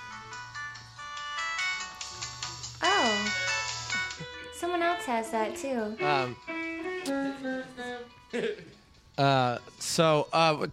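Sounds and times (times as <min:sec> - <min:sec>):
phone electronic ringtone: 0:00.0 - 0:06.8
speech: 0:05.0 - 0:10.7.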